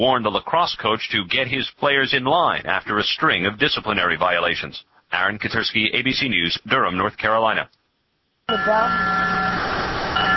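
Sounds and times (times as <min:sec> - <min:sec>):
speech: 0:00.0 - 0:07.8, 0:08.5 - 0:09.4
bells ringing in San Francisco in memory of earthquake and fire victims: 0:08.5 - 0:09.6, 0:10.2 - 0:10.3.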